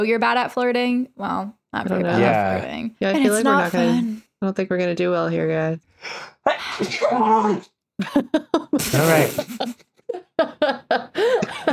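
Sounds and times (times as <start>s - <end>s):
speech: 0.0s - 11.7s
laughter: 8.0s - 11.7s
loud sneeze: 8.8s - 9.6s.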